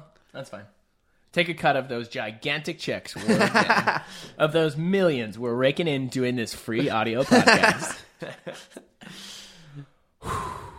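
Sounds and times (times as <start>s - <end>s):
speech: 0.3s - 10.4s
laughter: 3.2s - 4.3s, 6.8s - 8.9s
deep breath with inhale and sighing exhale: 9.0s - 10.7s.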